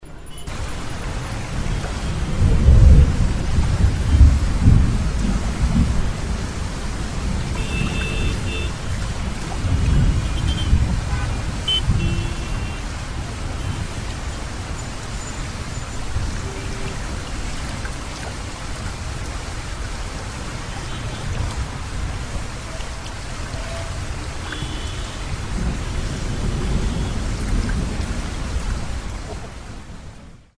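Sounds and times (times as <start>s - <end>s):
rain in Mumbai: 0.0s - 30.5s.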